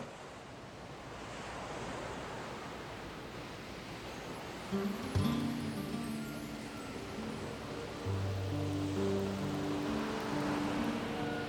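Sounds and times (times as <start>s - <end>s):
sea waves: 0.0s - 11.4s
soft sustained music notes: 4.4s - 11.4s
speech: 4.7s - 5.3s.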